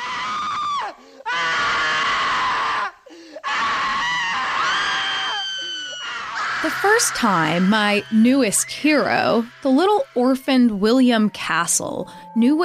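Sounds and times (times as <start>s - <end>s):
person screaming: 0.0s - 11.3s
breaths: 0.9s - 1.3s, 3.0s - 3.5s, 12.0s - 12.4s
speech: 6.6s - 12.6s.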